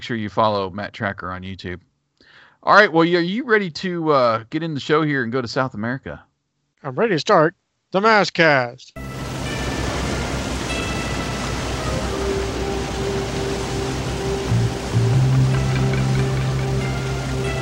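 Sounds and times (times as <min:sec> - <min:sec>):
speech: 0:00.0 - 0:09.1
roar of rushing water from a raging waterfall: 0:09.0 - 0:17.5.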